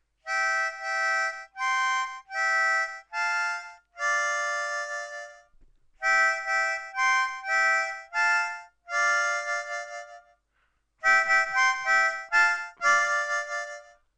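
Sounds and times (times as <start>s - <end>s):
harmonica chorus fill: 0.2s - 14.0s.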